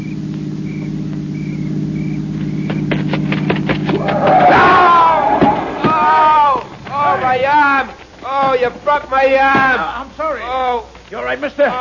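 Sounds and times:
car engine humming as the car approaches: 0.0 - 11.0
sharp knocks: 2.0 - 10.0
loud excited voices: 4.0 - 11.8
speech: 8.9 - 11.8.

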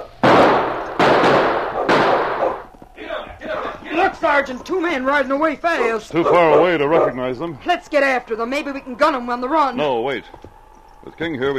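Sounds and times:
loud gunshots with decay: 0.0 - 2.7
speech: 4.1 - 10.5, 11.1 - 11.5.

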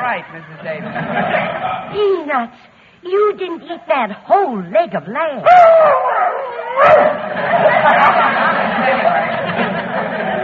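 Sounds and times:
laughter: 0.0 - 2.0, 6.7 - 10.4
speech: 0.1 - 6.2, 6.8 - 10.4
dog barking and yipping: 5.5 - 7.2.

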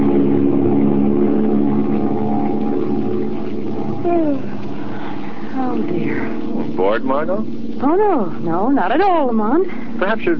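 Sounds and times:
passenger plane engines droning in flight: 0.0 - 10.3
speech: 6.8 - 10.3.

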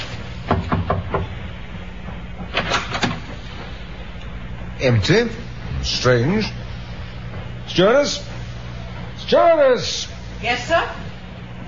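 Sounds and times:
low hum aboard a ship: 0.0 - 11.6
ship's captain knocking on a passenger's cabin door aboard a ship: 0.5 - 1.3
speech: 4.8 - 6.6, 7.7 - 8.3, 9.3 - 11.0.

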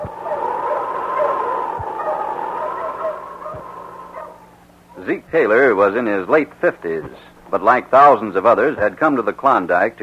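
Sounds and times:
dense steady roar: 0.0 - 5.7
dog barking: 0.2 - 4.5
speech: 5.1 - 10.0.

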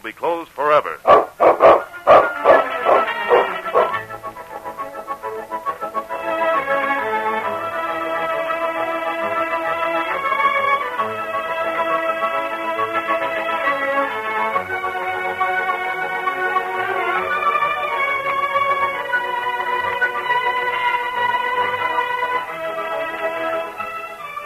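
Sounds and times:
speech: 0.0 - 1.2
dog barking sharply: 1.0 - 4.0
sustained orchestral music: 1.1 - 24.4.

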